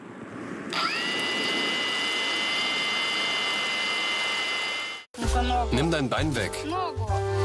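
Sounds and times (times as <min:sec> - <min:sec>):
military drone engine whining: 0:00.7 - 0:05.1
speech: 0:05.7 - 0:07.3.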